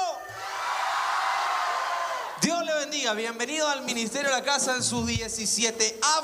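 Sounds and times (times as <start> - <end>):
large crowd roaring and cheering: 0.2 - 2.4
speech: 2.4 - 6.2.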